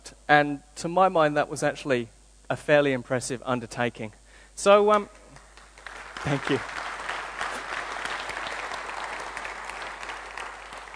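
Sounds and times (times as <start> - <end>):
speech: 0.3 - 5.2, 6.2 - 6.8
audience applauding at the end of a talk: 5.0 - 10.9.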